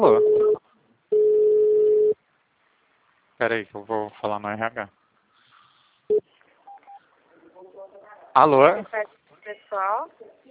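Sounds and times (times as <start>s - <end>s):
telephone tone while a call to a city hall is being transferred: 0.0s - 2.2s
speech: 3.4s - 5.0s, 8.4s - 10.5s.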